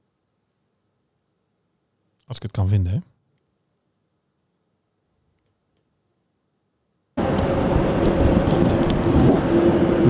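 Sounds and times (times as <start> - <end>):
speech: 2.3 - 3.1
aircraft engine roar in cabin during flight: 7.2 - 10.0.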